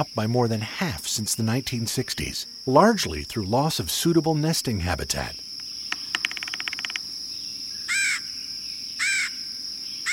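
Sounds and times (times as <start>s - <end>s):
speech: 0.0s - 5.4s
steady high insect drone: 0.0s - 10.1s
red-headed woodpecker giving harsh burry calls: 5.1s - 8.4s, 9.0s - 9.4s
red-headed woodpecker rattling taps: 5.9s - 7.0s.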